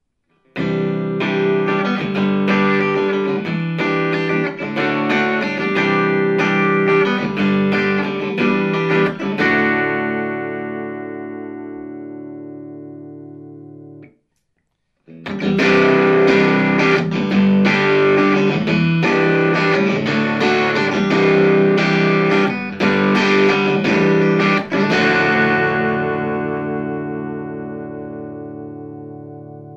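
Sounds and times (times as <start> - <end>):
electric guitar strummed on bridge single coil pickup: 0.4 - 14.1, 15.1 - 29.7.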